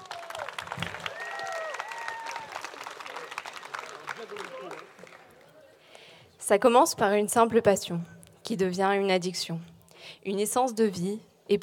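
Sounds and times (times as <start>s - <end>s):
audience applause, an ovation for a performer: 0.0s - 5.6s
speech: 6.5s - 11.6s.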